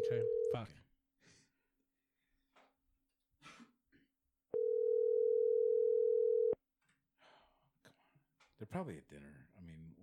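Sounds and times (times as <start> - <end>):
ringback tone on an outgoing telephone call: 0.0 - 0.5, 4.6 - 6.6
speech: 0.1 - 1.4, 8.6 - 10.0.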